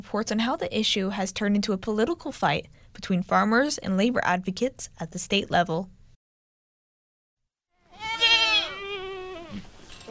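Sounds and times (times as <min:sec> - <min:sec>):
speech: 0:00.0 - 0:06.0
goats bleating in a field: 0:07.8 - 0:10.0.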